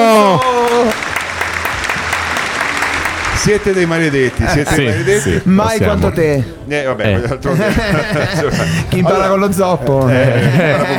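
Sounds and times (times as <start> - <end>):
audience applause: 0.0 - 6.3
speech: 3.4 - 10.9
laughter: 4.2 - 9.4, 10.0 - 10.9.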